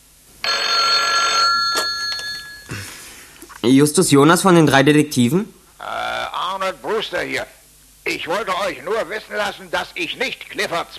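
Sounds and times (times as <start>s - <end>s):
telephone bell ringing with metallic jangle: 0.4s - 2.7s
speech: 3.6s - 6.0s, 7.0s - 10.9s.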